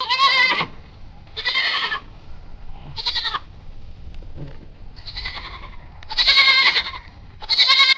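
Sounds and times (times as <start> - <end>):
pitched-down goat bleating: 0.0 - 2.2, 2.8 - 3.6, 4.9 - 7.9.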